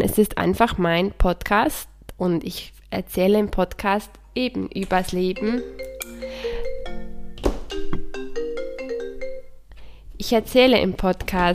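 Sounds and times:
speech: 0.2 - 6.5, 10.2 - 11.5
mobile phone ringtone: 5.4 - 9.6.

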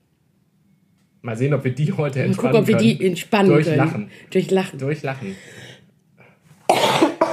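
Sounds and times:
speech: 1.2 - 5.7
soft breathing: 5.2 - 6.6
harsh coughs: 6.7 - 7.3.

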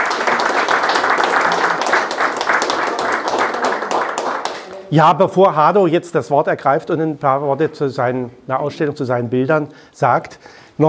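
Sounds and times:
room full of people applauding: 0.0 - 4.9
speech: 4.9 - 10.8.

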